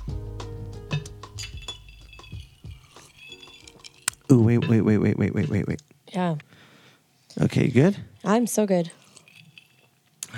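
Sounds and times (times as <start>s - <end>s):
glasses clinking in a toast: 1.3s - 5.8s, 8.2s - 10.0s
speech: 4.3s - 6.4s, 7.4s - 9.0s.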